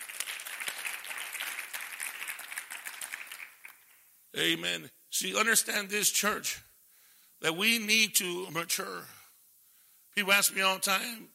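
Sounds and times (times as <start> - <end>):
audience clapping: 0.0 - 4.1
speech: 4.4 - 6.7, 7.4 - 9.2, 10.2 - 11.3.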